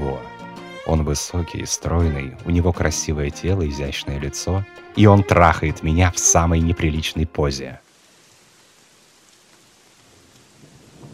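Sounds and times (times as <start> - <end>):
speech: 0.9 - 7.8
rain falling in a thunderstorm: 7.7 - 11.1
low rolling thunder rumble: 10.1 - 11.1.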